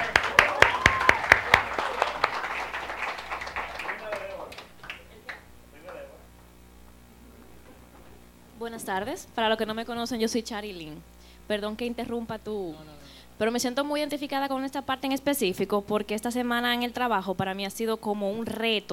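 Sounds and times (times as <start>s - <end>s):
audience applause for a speaker: 0.0s - 6.2s
low hum: 5.2s - 13.4s
speech: 8.7s - 18.9s.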